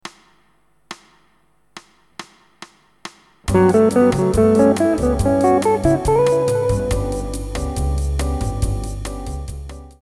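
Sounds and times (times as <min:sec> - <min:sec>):
melodic patterns in Lydian mode: 0:03.5 - 0:07.8.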